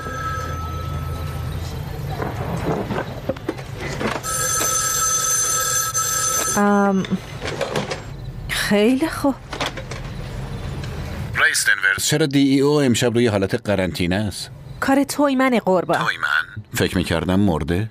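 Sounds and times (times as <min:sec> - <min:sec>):
old-fashioned telephone bell ringing: 0:00.0 - 0:01.7, 0:04.2 - 0:07.2
scattered knocks and clatters: 0:02.1 - 0:04.7, 0:07.3 - 0:08.2, 0:09.5 - 0:10.2
speech: 0:06.6 - 0:07.3, 0:08.7 - 0:09.5, 0:11.6 - 0:17.8.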